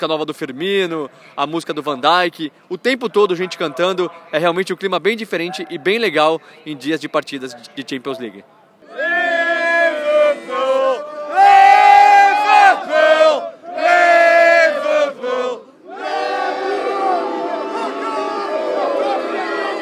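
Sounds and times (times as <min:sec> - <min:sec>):
speech: 0:00.0 - 0:08.6
large crowd of football fans booing arriving team bus: 0:08.8 - 0:19.8.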